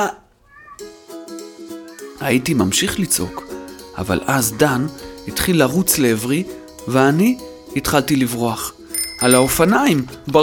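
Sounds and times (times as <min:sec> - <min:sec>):
speech: 0:00.0 - 0:00.2, 0:02.2 - 0:10.4
cat meowing: 0:00.4 - 0:00.9.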